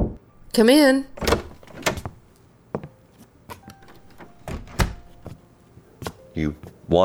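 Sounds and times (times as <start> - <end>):
office door latch clicks: 0.4 - 2.3, 3.7 - 5.4
dull wooden thunks of an office door: 0.4 - 2.9, 3.8 - 5.4
speech: 0.6 - 1.2, 6.4 - 7.0.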